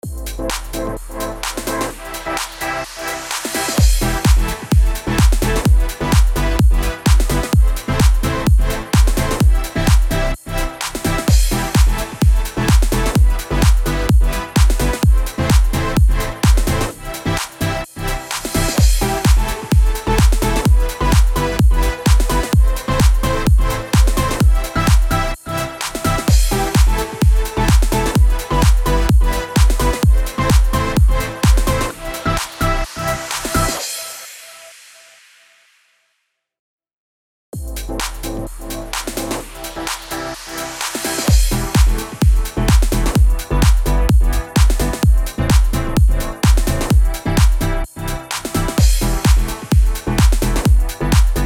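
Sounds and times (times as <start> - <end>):
house music in E minor at 128 bpm: 0.0 - 34.9, 37.6 - 51.4.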